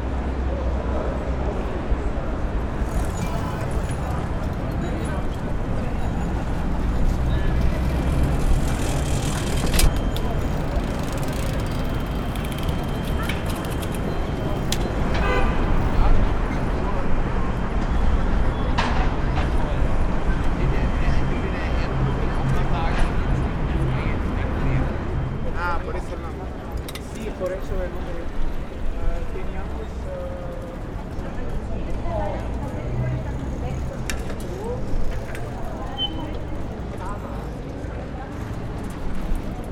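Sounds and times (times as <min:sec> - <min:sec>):
crowd murmuring in a cobbled square: 0:00.0 - 0:39.7.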